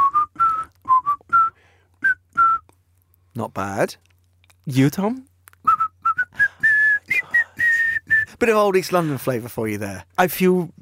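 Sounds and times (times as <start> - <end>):
person whistling a bouncy pop melody: 0.0 - 2.7, 5.6 - 8.4
speech: 3.4 - 4.1, 4.7 - 5.3, 8.4 - 10.8.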